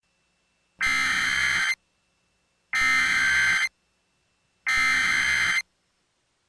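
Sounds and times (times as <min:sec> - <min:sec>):
emergency alert system header tones: 0:00.8 - 0:01.8, 0:02.8 - 0:03.7, 0:04.7 - 0:05.6.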